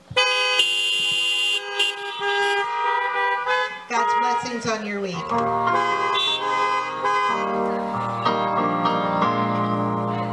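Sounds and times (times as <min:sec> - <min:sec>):
faint low traffic rumble: 0:00.0 - 0:10.3
car horn honking: 0:00.1 - 0:07.7
speech: 0:04.5 - 0:06.1.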